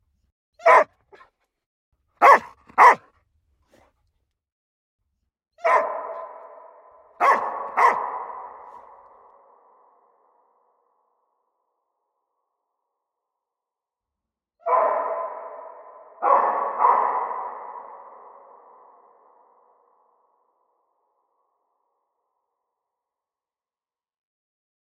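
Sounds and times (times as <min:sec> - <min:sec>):
dog barking: 0:00.6 - 0:01.4, 0:02.2 - 0:03.1, 0:05.6 - 0:09.0, 0:14.6 - 0:18.9.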